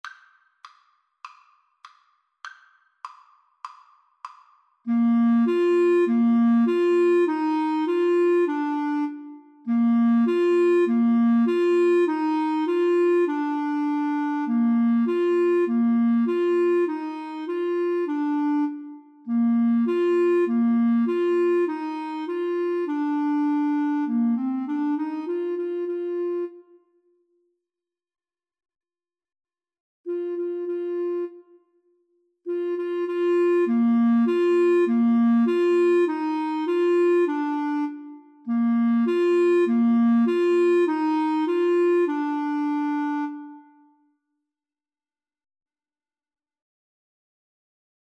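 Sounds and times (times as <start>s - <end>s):
flute in flute and clarinet duet: 4.9s - 27.2s, 30.1s - 31.9s, 32.5s - 44.1s
clarinet in flute and clarinet duet: 4.9s - 27.4s, 30.1s - 44.1s.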